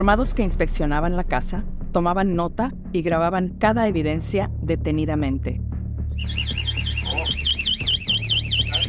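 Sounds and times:
speech: 0.0 - 5.6, 6.2 - 6.7
house alarm warbling electronically: 6.2 - 8.8.

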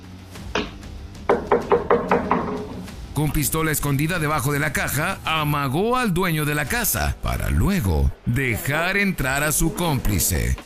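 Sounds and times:
knocking on a house door: 0.6 - 2.9
speech: 3.2 - 10.6.

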